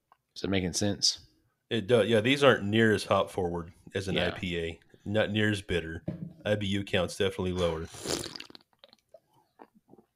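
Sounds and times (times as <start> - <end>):
speech: 0.4 - 8.4
drawn-out gulp: 7.6 - 10.1
person slurping 5.2% ABV beer: 7.6 - 10.1.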